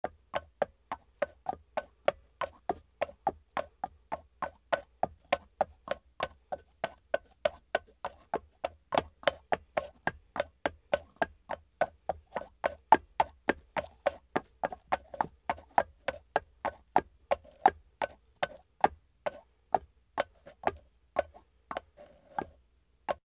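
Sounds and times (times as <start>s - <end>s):
horse walking on a wooden floor: 0.2s - 22.6s.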